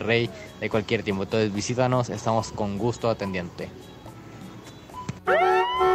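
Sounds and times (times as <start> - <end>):
speech: 0.0 - 3.9, 5.3 - 5.5
loud brassy horn blast: 5.3 - 5.9.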